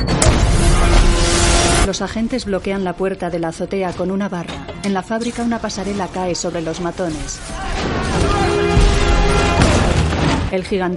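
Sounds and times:
explosive detonating: 0:00.0 - 0:01.9, 0:07.6 - 0:10.5
speech: 0:01.9 - 0:08.5, 0:10.5 - 0:10.9.

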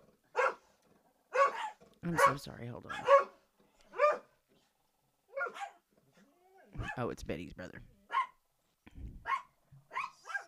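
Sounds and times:
dogs barking at a cat: 0:00.3 - 0:00.7, 0:01.3 - 0:04.3, 0:05.3 - 0:05.8, 0:06.7 - 0:07.0, 0:08.1 - 0:08.4, 0:09.2 - 0:10.4
speech: 0:02.0 - 0:03.3, 0:07.0 - 0:08.0.

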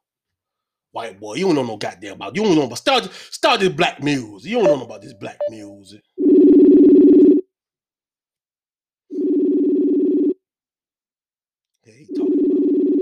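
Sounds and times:
speech: 0:01.0 - 0:06.1
outgoing phone call ringback tone: 0:04.6 - 0:07.4, 0:09.2 - 0:10.4.

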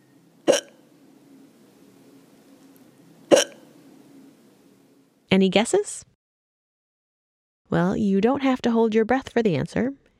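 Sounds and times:
woman hiccuping: 0:00.5 - 0:00.8, 0:03.3 - 0:03.7
speech: 0:05.3 - 0:06.1, 0:07.7 - 0:10.0.

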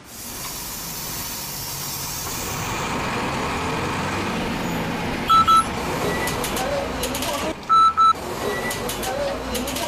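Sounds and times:
crowded city bus engine and road noise: 0:00.0 - 0:09.8
high electronic beeps: 0:05.3 - 0:06.3.

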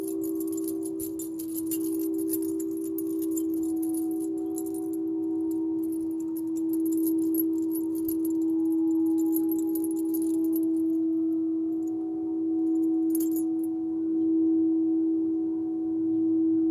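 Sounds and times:
bracelet or chimes jangling: 0:00.0 - 0:11.0, 0:12.7 - 0:13.7
singing bowl humming: 0:00.0 - 0:16.7.

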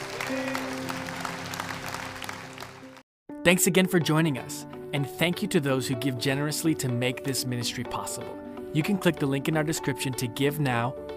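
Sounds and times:
crowd clapping: 0:00.0 - 0:03.0
speech: 0:03.4 - 0:11.1.

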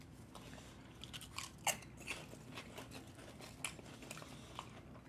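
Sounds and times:
chewing potato chips: 0:00.1 - 0:05.0
crunching of kalbi-flavoured potato chips: 0:00.9 - 0:05.0.

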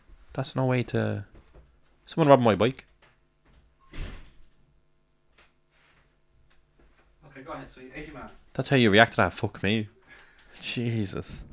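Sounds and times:
speech: 0:00.4 - 0:01.3, 0:02.1 - 0:02.9, 0:07.5 - 0:10.0, 0:10.6 - 0:11.5
door opening: 0:03.0 - 0:04.6.

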